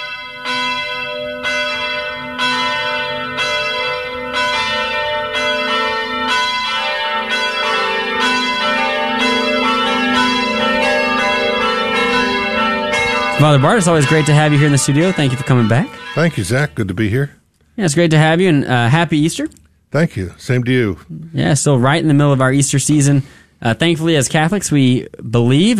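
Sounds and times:
church bells pealing: 0.0 - 16.8
speech: 13.4 - 25.7.

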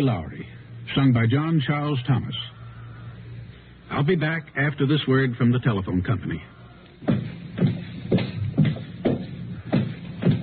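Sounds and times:
speech: 0.0 - 2.6, 3.9 - 7.2
footsteps with a soft scuffing thud: 6.8 - 10.4.

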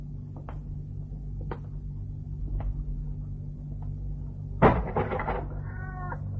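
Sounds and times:
low steady hum: 0.0 - 6.3
soft taps and shuffles: 0.3 - 0.7, 1.4 - 1.8, 2.4 - 3.0
bump: 4.6 - 5.9
tabby cat's drawn-out meow: 5.5 - 6.3.

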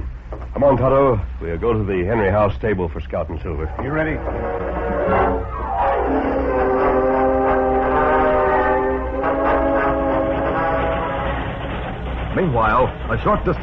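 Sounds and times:
speeding train rumbling: 0.0 - 13.6
speech: 0.6 - 5.5, 12.4 - 13.6
train horn blaring: 3.7 - 12.3.

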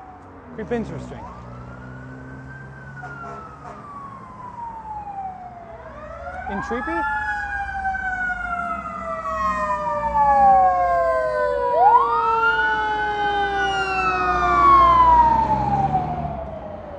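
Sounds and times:
fire truck siren passing on a highway: 0.0 - 16.9
low road rumble: 0.0 - 16.9
speech: 0.6 - 1.4, 6.5 - 7.3.

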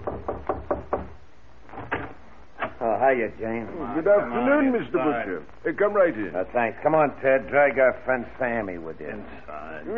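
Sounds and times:
knocking on a door: 0.0 - 1.2
speech: 3.0 - 9.9.

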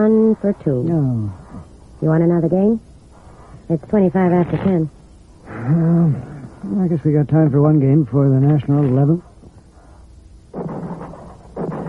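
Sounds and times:
speech: 0.0 - 2.9, 3.7 - 9.3
shotgun blasts from a farm across the road in rural Ontario: 10.5 - 11.8.

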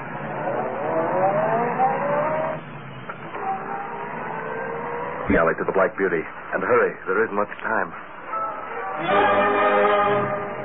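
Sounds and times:
car engine starting and revving: 0.0 - 5.6
speech: 5.3 - 8.1, 9.0 - 10.4.

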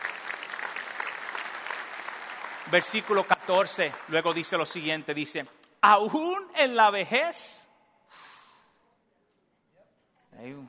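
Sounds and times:
congregation applauding in church: 0.0 - 5.4
speech: 2.7 - 7.6.

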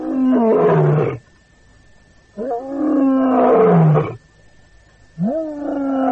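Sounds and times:
lion roaring: 0.0 - 1.2, 2.4 - 4.2, 5.2 - 6.0.

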